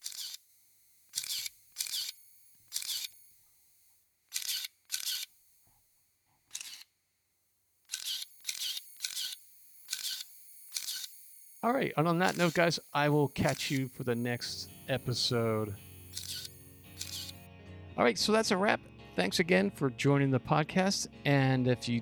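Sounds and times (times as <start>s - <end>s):
Contax ST film SLR camera with Zeiss Planar lens firing its shutter: 0.0s - 0.5s, 1.1s - 3.4s, 4.3s - 5.4s, 6.5s - 6.9s, 7.9s - 11.3s, 12.0s - 17.4s
speech: 11.7s - 15.8s, 18.0s - 21.9s.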